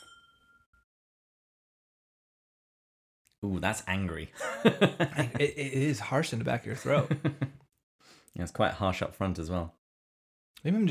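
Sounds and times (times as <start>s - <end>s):
glasses of single malt whisky clinking in a toast: 0.0s - 0.6s
speech: 3.4s - 7.6s, 8.4s - 9.8s, 10.6s - 10.9s
laughter: 4.4s - 7.6s.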